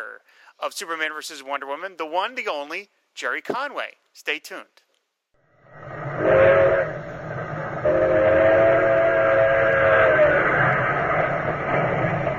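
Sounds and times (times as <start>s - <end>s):
speech: 0.2s - 4.9s
train rushing along rails toward a busy city terminal: 5.7s - 12.3s
train whistle blast: 5.8s - 11.2s.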